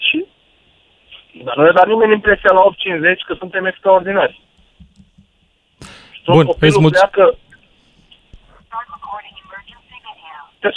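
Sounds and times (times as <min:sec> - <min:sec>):
speech: 0:01.5 - 0:04.5, 0:06.3 - 0:07.4
car dashboard camera recorded voice prompt from a small speaker: 0:05.8 - 0:07.5, 0:08.6 - 0:10.4.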